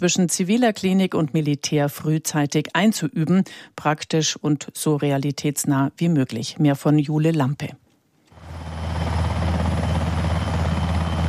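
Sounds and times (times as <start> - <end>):
speech: 0.0 - 7.8
helicopter rotor thudding: 8.3 - 11.2.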